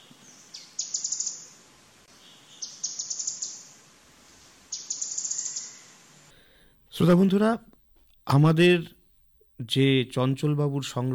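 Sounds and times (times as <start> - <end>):
canary flycatcher song: 0.0 - 3.8, 4.7 - 6.1
speech: 7.0 - 7.7, 8.3 - 9.0, 9.6 - 11.1.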